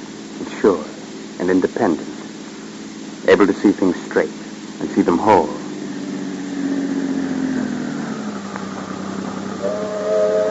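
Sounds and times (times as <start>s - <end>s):
deep mechanical rumble: 0.0s - 10.4s
speech: 0.6s - 2.1s, 3.3s - 5.6s
steam train whistle: 9.6s - 10.4s.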